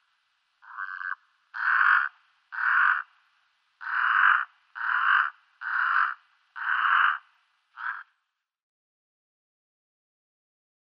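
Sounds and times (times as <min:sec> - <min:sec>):
brown-necked raven croaking: 0:00.6 - 0:03.2, 0:03.8 - 0:08.2.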